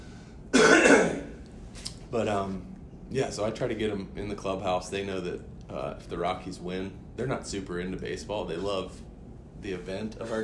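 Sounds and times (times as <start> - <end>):
throat-clearing cough: 0.5 - 1.4
speech: 2.1 - 10.4.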